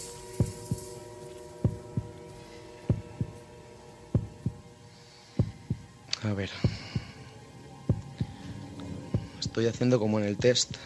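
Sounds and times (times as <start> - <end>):
heartbeat: 1.6 - 2.2, 2.9 - 3.4, 4.1 - 4.6, 5.4 - 5.9, 6.6 - 7.2, 7.9 - 8.4, 9.1 - 9.4
speech: 6.2 - 6.8, 9.6 - 10.8.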